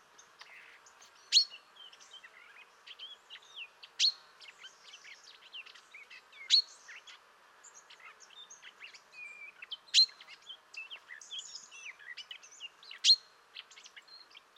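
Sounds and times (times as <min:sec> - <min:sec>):
soft twittering notes: 0:00.0 - 0:14.5
Common chaffinch giving loud sharp high call notes: 0:00.4 - 0:04.4, 0:07.9 - 0:10.4, 0:12.9 - 0:13.3.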